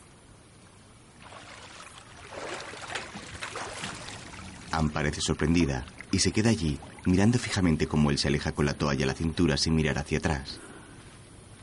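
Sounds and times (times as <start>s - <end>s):
man swimming in a pool with soft churning strokes: 0.0s - 7.7s
water sloshing and splashing in a pool: 1.1s - 7.8s
speech: 4.8s - 10.7s.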